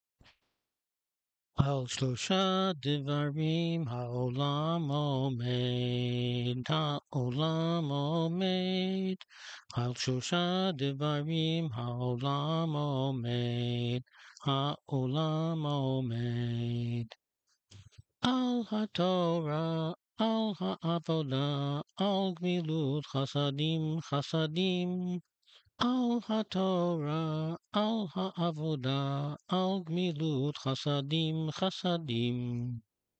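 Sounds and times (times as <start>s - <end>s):
person singing a song: 1.6s - 17.2s, 18.2s - 25.2s, 25.8s - 32.8s.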